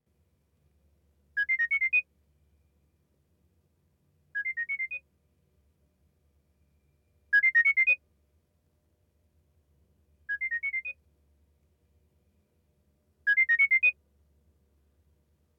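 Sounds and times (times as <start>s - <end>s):
ringtone recorded holophonically: 1.4s - 2.0s, 4.4s - 5.0s, 7.4s - 8.0s, 10.3s - 11.0s, 13.3s - 13.9s.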